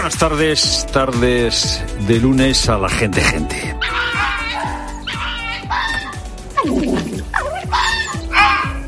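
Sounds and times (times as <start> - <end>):
speech: 0.1 - 4.2
vixen barking yelps: 3.8 - 8.8.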